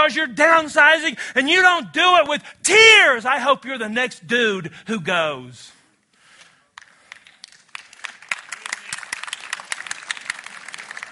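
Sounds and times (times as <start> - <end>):
speech: 0.1 - 5.8
crowd applause: 6.8 - 11.0.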